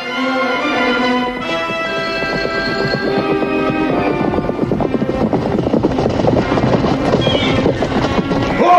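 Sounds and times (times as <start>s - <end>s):
dense sustained musical backdrop: 0.0s - 8.7s
hoofbeats of horses on the move: 0.0s - 8.7s.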